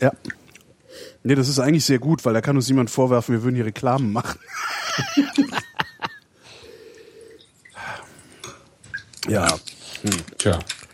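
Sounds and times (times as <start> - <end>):
speech: 0.0 - 5.7, 9.3 - 10.8
laughter: 4.2 - 6.3
water dripping from a wine glass: 6.9 - 9.6.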